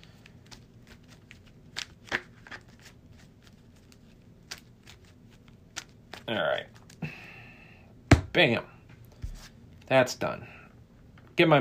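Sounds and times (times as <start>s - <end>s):
large deck of game cards being shuffled: 0.0s - 7.0s
speech: 6.3s - 6.8s, 8.4s - 8.7s, 9.9s - 10.5s, 11.4s - 11.5s.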